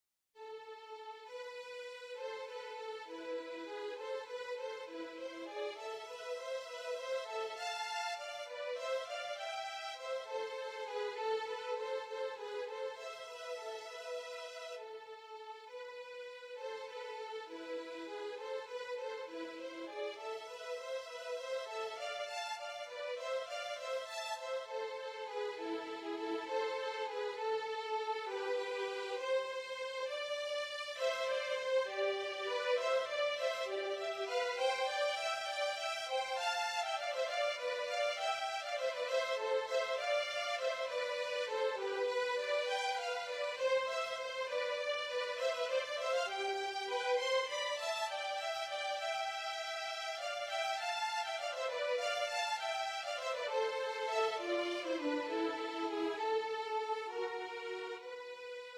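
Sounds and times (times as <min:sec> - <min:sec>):
violin duet: 0:00.4 - 0:58.7.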